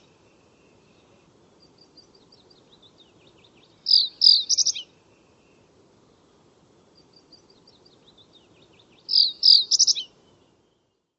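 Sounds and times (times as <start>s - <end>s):
bird calling with whistled and chipping notes: 3.7s - 4.9s, 9.1s - 10.1s.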